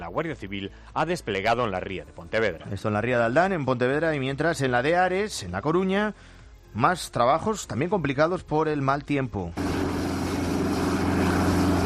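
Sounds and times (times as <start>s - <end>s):
speech: 0.1s - 9.8s
reconnaissance and transport helicopter descending to a stranded ship: 9.6s - 11.8s.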